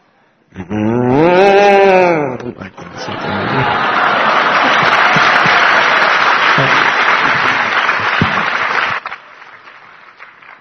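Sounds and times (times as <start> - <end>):
speech: 0.6 - 0.9
person imitating cow mooing: 0.6 - 2.4
laughter: 2.1 - 8.2.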